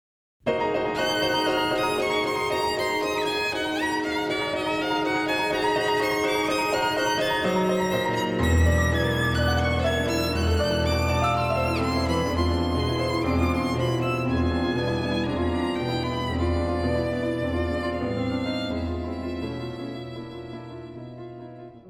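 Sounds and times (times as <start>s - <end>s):
piano in a concerto for violin and piano: 0.4s - 21.8s
violin in a concerto for violin and piano: 0.5s - 21.8s.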